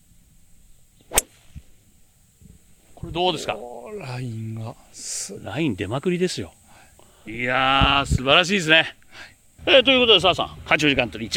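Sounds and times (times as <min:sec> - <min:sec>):
steady high hiss: 0:00.0 - 0:11.3
golf club swishing: 0:01.0 - 0:01.8
golf club striking a ball with a sharp crack: 0:01.1 - 0:01.6
speech: 0:03.1 - 0:06.6, 0:07.2 - 0:11.3.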